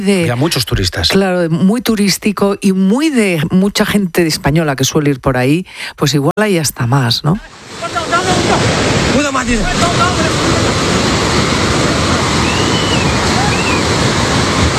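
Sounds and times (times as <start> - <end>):
speech: 0.0 - 10.5
roar of rushing floodwater: 7.4 - 14.7.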